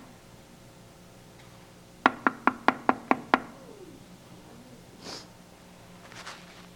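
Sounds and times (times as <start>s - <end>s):
knocking on a door: 2.1s - 3.5s
soft breathing: 4.3s - 5.4s
person sniffing: 4.9s - 5.4s.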